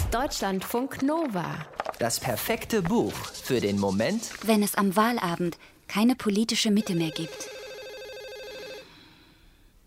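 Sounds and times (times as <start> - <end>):
speech: 0.1 - 7.5
landline telephone ringing with a rapidly trilling electronic ring: 6.8 - 9.2.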